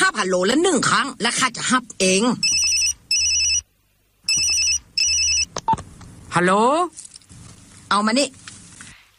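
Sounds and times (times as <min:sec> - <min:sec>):
speech: 0:00.2 - 0:02.5, 0:06.3 - 0:07.0, 0:07.9 - 0:08.4
telephone ringtone ringing in high-pitched electronic bursts: 0:02.4 - 0:03.7, 0:04.3 - 0:05.5.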